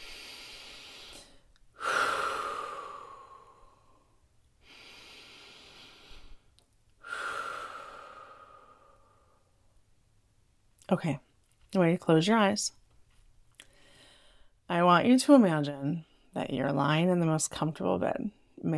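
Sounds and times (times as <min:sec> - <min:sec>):
deep breaths in a guided relaxation exercise: 0:00.0 - 0:09.6, 0:13.6 - 0:14.6
speech: 0:10.9 - 0:12.8, 0:14.7 - 0:18.7.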